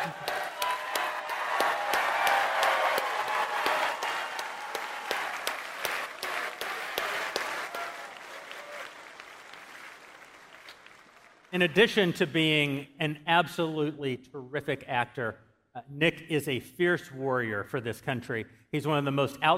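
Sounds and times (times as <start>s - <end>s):
crowd applauding in a large room: 0.0s - 11.8s
speech: 11.6s - 19.5s.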